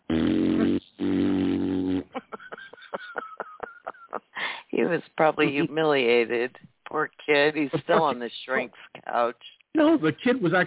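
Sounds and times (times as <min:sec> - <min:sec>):
voice imitating a child's fart in rubber pants: 0:00.0 - 0:02.2
laughter: 0:02.1 - 0:04.6, 0:05.4 - 0:05.7, 0:07.7 - 0:08.2
speech: 0:04.9 - 0:10.6.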